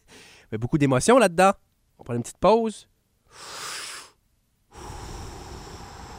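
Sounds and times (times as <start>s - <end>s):
deep breath inhale and exhale: 0.0s - 0.5s, 3.3s - 6.1s
speech: 0.5s - 3.6s.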